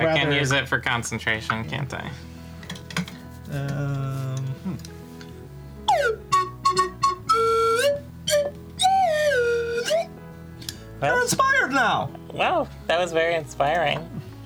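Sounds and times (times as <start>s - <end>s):
speech: 0.1s - 2.4s, 3.5s - 4.2s, 11.0s - 14.2s
slide whistle: 5.9s - 10.1s.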